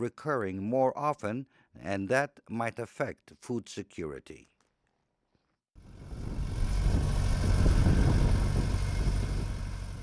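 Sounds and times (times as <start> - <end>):
speech: 0.0 - 4.5
heavy tractor engine rumbling with mechanical rattle while tilling farmland: 5.9 - 10.0.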